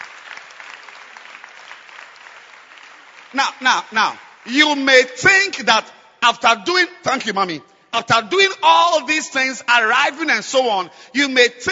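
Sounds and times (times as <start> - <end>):
large audience clapping hands: 0.0 - 4.9
speech: 3.3 - 11.7.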